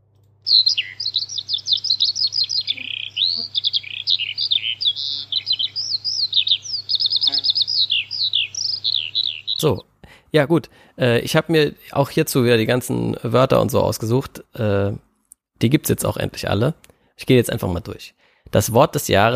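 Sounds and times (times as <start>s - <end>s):
Eurasian skylark singing warbling trills and chirps: 0.5s - 9.8s
speech: 9.6s - 19.3s.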